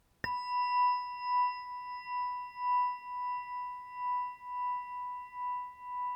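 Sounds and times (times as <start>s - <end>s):
7cm bell ringing: 0.3s - 6.0s.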